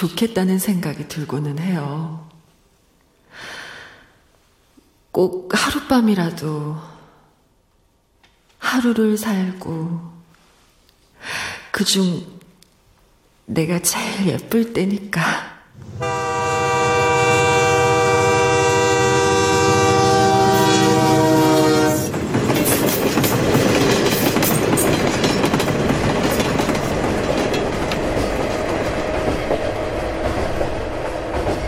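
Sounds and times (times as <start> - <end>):
speech: 0.0 - 2.3, 5.2 - 6.9, 8.6 - 10.1, 11.2 - 12.4, 13.5 - 16.2
train horn blaring: 15.8 - 22.1
loud rumble of a train running on rails with clickety-clack: 15.8 - 31.6.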